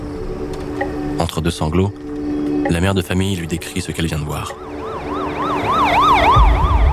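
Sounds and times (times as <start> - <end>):
speech: 1.2 - 2.0, 2.7 - 4.8
police car siren wailing: 4.3 - 6.9.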